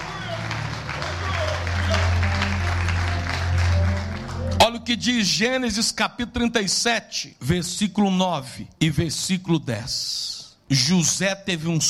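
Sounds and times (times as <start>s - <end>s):
crowd clapping: 0.0s - 5.2s
speech: 4.8s - 11.8s.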